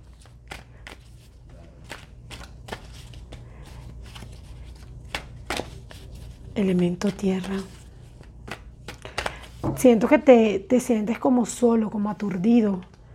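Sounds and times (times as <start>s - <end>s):
deck of cards being shuffled: 0.0s - 9.7s
low steady hum: 0.0s - 13.1s
speech: 6.6s - 7.8s, 9.8s - 12.9s.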